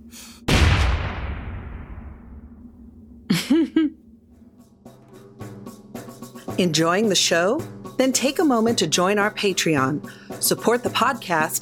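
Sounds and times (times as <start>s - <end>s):
loud explosion with rumble: 0.5s - 3.2s
speech: 3.5s - 4.0s, 6.6s - 11.6s.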